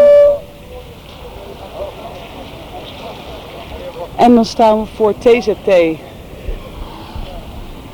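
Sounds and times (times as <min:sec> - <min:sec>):
loud short horn blast: 0:00.0 - 0:00.6
street traffic noise of vehicles moving: 0:00.0 - 0:07.9
speech: 0:04.2 - 0:06.1.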